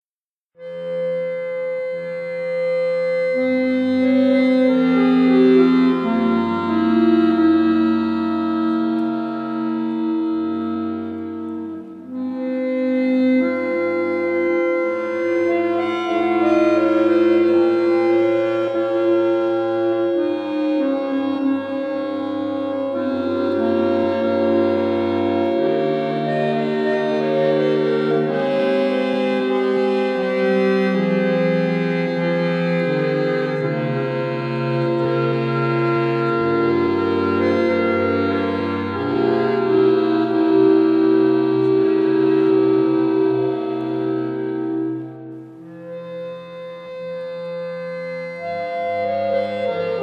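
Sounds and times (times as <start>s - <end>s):
accordion duet tuned to 432 Hz: 0.6s - 50.0s.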